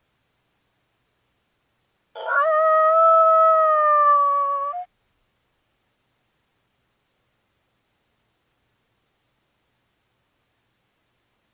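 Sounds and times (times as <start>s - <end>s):
coyote howling: 2.2s - 4.9s.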